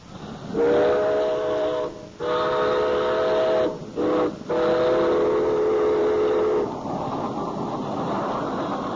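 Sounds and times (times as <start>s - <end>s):
heavy clatter of approaching train: 0.0s - 8.9s
train whistle blasts: 0.5s - 6.7s.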